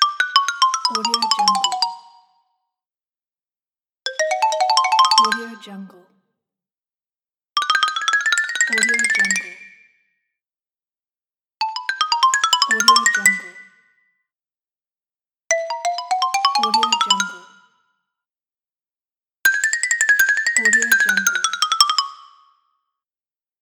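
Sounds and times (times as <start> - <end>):
cartoon xylophone: 0.1 - 2.3, 4.1 - 5.6, 7.7 - 9.5, 11.6 - 13.7, 15.5 - 17.7, 20.4 - 22.2.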